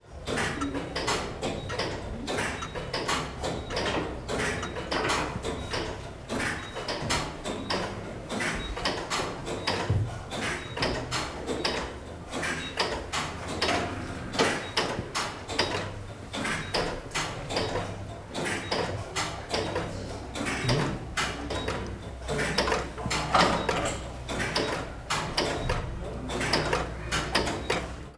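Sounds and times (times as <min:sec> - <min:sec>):
rhythmic clock ticking: 0:00.1 - 0:28.1.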